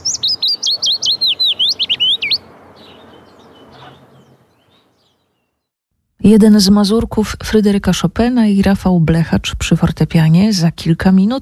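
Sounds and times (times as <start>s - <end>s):
willow warbler song: 0.0s - 5.8s
speech: 6.3s - 11.4s.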